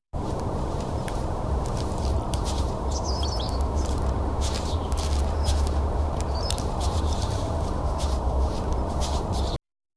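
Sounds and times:
slow footsteps: 0.2 - 9.6
sparrow: 2.0 - 8.2.

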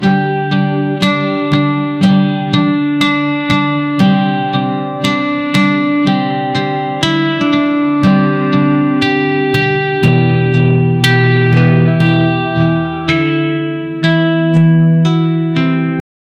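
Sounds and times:
romantic guitar melody: 0.0 - 16.0.

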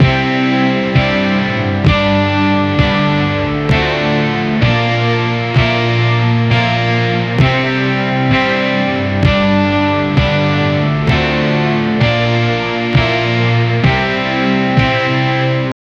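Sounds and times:
sad trap pop rock love song: 0.0 - 15.7.

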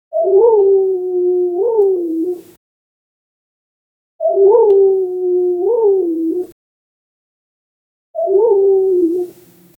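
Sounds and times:
owl calling: 0.1 - 2.5, 4.2 - 6.5, 8.2 - 9.4.

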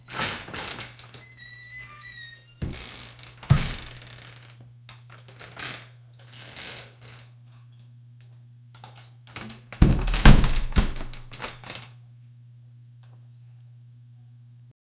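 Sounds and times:
door slowly creaking open: 0.1 - 4.5, 9.4 - 11.7.

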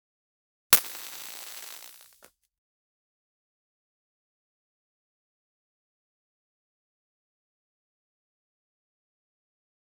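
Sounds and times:
light bulb exploding: 0.8 - 2.3.

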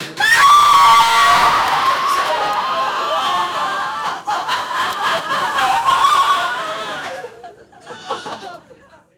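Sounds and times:
explosive crowd reaction: 0.0 - 7.1
laughter: 0.3 - 9.0.

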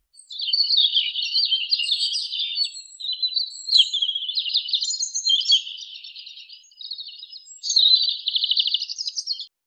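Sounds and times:
birds chirping: 0.2 - 9.5.

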